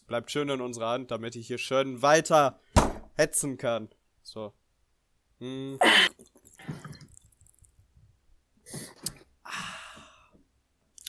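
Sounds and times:
speech: 0.1 - 4.6, 5.4 - 6.3
sipping and swallowing water: 5.8 - 7.9
small wet mouth noises: 5.8 - 7.9
breathy sigh of satisfaction: 8.7 - 10.4.

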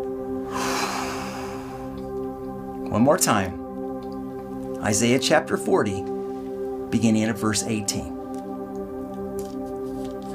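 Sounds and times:
sustained musical drone: 0.0 - 10.3
deep breath in and exhale during a guided prayer: 0.5 - 2.1
speech: 2.9 - 3.6, 4.8 - 6.1, 6.9 - 8.1.

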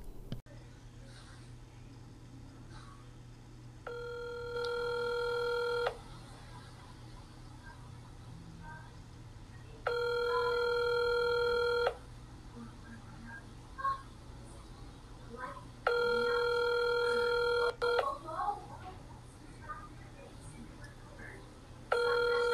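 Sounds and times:
low hum: 0.0 - 22.5
telephone ringing unanswered: 3.8 - 6.0, 9.8 - 12.0, 15.8 - 18.2, 21.9 - 22.5.

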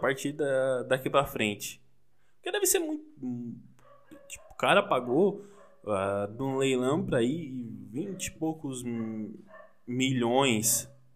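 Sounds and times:
speech: 0.0 - 1.8, 2.4 - 3.7, 4.3 - 11.0
dog barking: 3.8 - 6.0, 8.0 - 9.9, 10.5 - 11.1.

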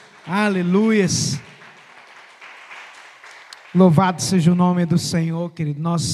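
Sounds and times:
audience applauding during an evening church worship service: 0.0 - 4.5
speech: 0.2 - 1.5, 3.8 - 6.1.

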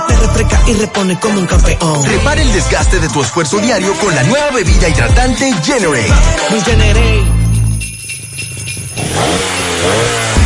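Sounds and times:
speech: 0.4 - 7.4
engine revving: 9.0 - 10.4.

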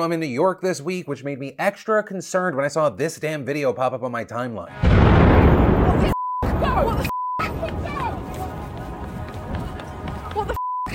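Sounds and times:
speech: 0.0 - 6.1, 6.8 - 7.1
street explosion with a loud booming blast: 4.7 - 6.7
crowd running footsteps: 7.4 - 10.6.

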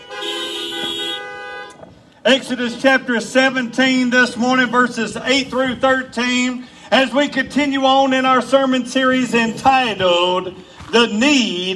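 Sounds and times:
car horn honking: 0.0 - 2.1
speech: 2.3 - 11.7.

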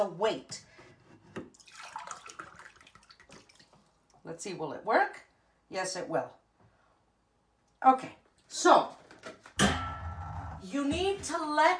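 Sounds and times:
speech: 0.0 - 0.7, 4.2 - 6.4, 7.8 - 9.0, 10.6 - 11.7
water pouring into a mug: 1.5 - 3.8.

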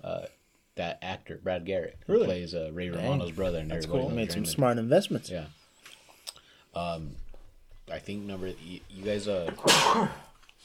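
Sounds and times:
speech: 0.8 - 5.6, 6.8 - 7.2, 7.9 - 10.6
single loud sneeze: 9.6 - 10.3.

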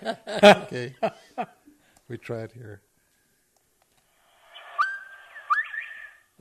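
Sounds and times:
speech: 0.0 - 1.5, 2.2 - 2.9
faint hum: 0.0 - 6.3
bobwhite quail calling with two whistled notes: 4.5 - 6.3.

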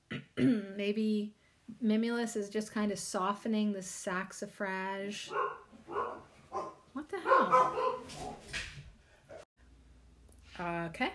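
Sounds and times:
speech: 0.4 - 5.6, 10.6 - 11.1
dogs barking at a neighbor dropping off dog food: 5.3 - 8.5.

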